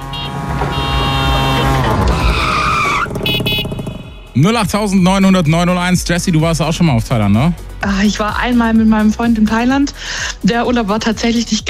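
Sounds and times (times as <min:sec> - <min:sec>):
whooshing screeching tuk-tuk pass: 0:00.0 - 0:04.3
tuk-tuk three-wheeled motor revving: 0:00.1 - 0:04.1
speech: 0:04.4 - 0:11.6.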